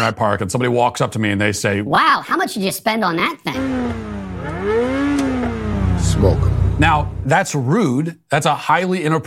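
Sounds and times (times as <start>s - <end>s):
speech: 0.0s - 5.3s, 6.0s - 9.2s
sports car engine revving: 3.6s - 7.5s.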